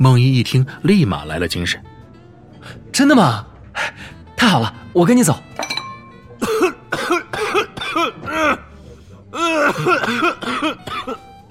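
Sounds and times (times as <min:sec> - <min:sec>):
speech: 0:00.0 - 0:01.9, 0:02.6 - 0:05.6
person coughing violently at a nearby table: 0:06.4 - 0:08.7, 0:09.4 - 0:11.2.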